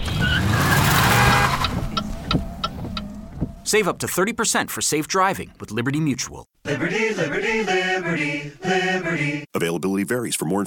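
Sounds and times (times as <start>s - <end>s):
car tire squeal from hard braking: 0.0s - 3.7s
car engine rumble: 0.0s - 4.6s
speech: 3.7s - 10.6s.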